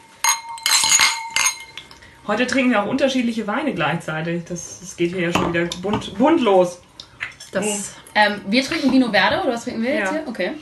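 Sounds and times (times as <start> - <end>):
wine glasses clinking in a toast: 0.0 - 2.1
speech: 2.3 - 6.8, 7.5 - 10.6.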